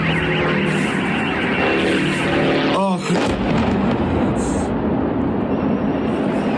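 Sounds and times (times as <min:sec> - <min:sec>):
heavy roaring rumble: 0:00.0 - 0:05.5
attack drones flying overhead in an attack on an oil refinery: 0:00.0 - 0:06.5.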